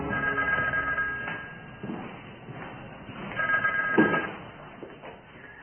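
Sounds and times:
telephone ringing in trilling bursts: 0.1s - 1.6s, 3.4s - 4.4s.

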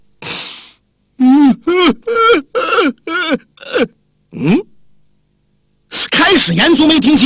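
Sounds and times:
storyteller's male voice imitating loud weeping: 1.2s - 4.7s
speech: 6.5s - 7.2s.

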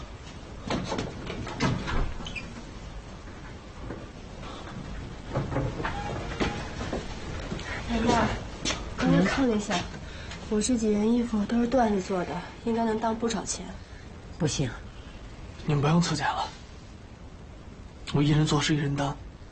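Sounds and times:
wooden door opening indoors with knocks, clunks and a creak: 0.6s - 2.8s, 5.0s - 7.4s
speech: 9.4s - 14.8s, 15.7s - 16.6s, 18.1s - 19.2s.

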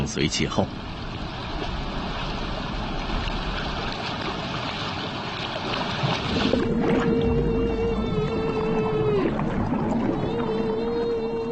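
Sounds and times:
rushing underwater wash: 0.0s - 11.4s
humpback whale call from lead whale of a hunting group: 6.6s - 11.4s.

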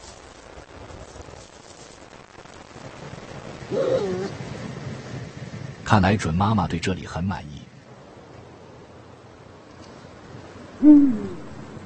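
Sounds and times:
speech: 5.9s - 7.6s, 10.8s - 11.3s
Eurasian eagle-owl hooting: 10.8s - 11.7s.

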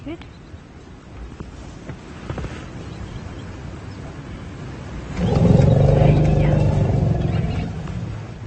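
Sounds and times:
elephants rumbling call: 5.1s - 8.4s.

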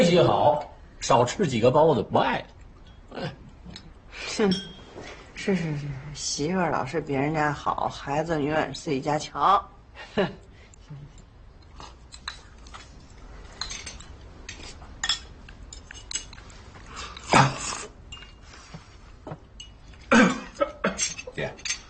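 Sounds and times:
speech: 0.1s - 4.8s, 5.4s - 11.1s
dishes and utensils clinking: 2.8s - 5.2s, 11.1s - 17.5s, 18.1s - 21.8s
man coughing: 20.1s - 21.2s.

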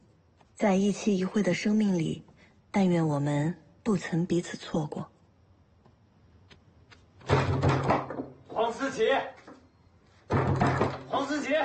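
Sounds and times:
speech: 0.6s - 5.1s, 11.2s - 11.6s
loud rattling banging on a door: 7.2s - 8.5s, 10.2s - 11.2s.

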